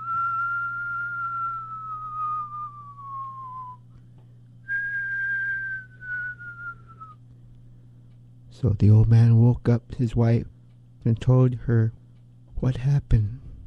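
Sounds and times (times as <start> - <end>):
person whistling long gliding tones: 0.0 - 3.8, 4.7 - 7.2
low constant hum: 0.0 - 13.6
speech: 8.6 - 12.0, 12.6 - 13.4.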